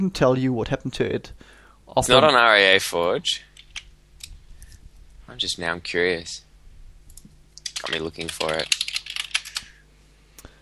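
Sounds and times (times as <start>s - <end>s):
speech: 0.0s - 3.5s, 5.3s - 6.5s, 7.8s - 8.8s
typing on an old clicky IBM mechanical keyboard: 7.1s - 9.7s.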